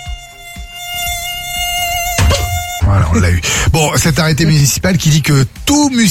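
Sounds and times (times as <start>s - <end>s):
tiger mosquito buzzing in flight: 0.0s - 2.8s
speech: 3.1s - 6.0s.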